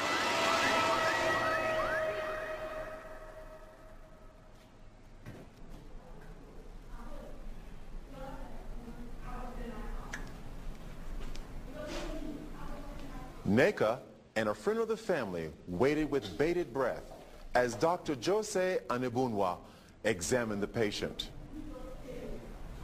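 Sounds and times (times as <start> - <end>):
ambulance siren wailing: 0.0 - 3.7
street noise: 0.0 - 4.5
speech: 13.5 - 21.4.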